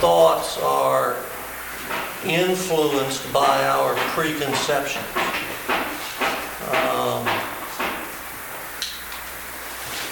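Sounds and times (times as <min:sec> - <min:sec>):
speech: 0:00.0 - 0:05.4
hammering across the street: 0:01.8 - 0:08.7.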